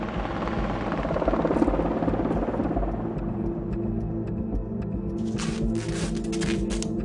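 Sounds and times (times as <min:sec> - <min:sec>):
helicopters circling overhead with throbbing rotor drone: 0:00.0 - 0:04.8
burst of rattling noise: 0:05.2 - 0:06.9.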